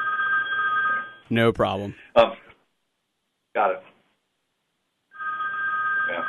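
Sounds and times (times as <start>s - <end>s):
telephone ringing: 0.0s - 1.3s, 5.1s - 6.2s
speech: 1.3s - 2.4s, 3.6s - 3.9s.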